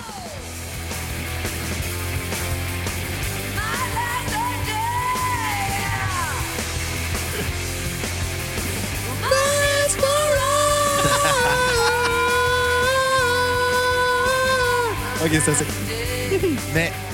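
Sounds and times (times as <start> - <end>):
loud distorted grunge rock song with dense band: 0.0 - 17.1
raw strained screaming rock vocals: 9.3 - 14.9
laughter: 10.5 - 13.8, 15.3 - 16.9
speech: 15.3 - 17.0.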